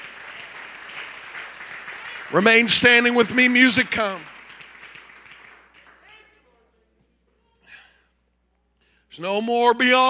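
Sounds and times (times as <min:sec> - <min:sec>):
large congregation clapping hands: 0:00.0 - 0:06.4
speech: 0:02.3 - 0:04.3, 0:09.2 - 0:10.0.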